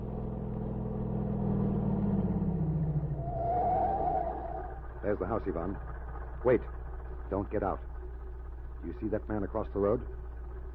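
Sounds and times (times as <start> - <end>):
car engine rumbling as the vehicle drives: 0.0 - 10.7
high whine: 2.6 - 7.8
speech: 5.0 - 7.9, 8.8 - 10.2.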